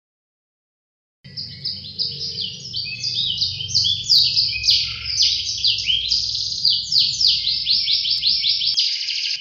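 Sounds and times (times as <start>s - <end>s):
competition Atlantic canary singing rolls and trills: 1.3s - 9.3s.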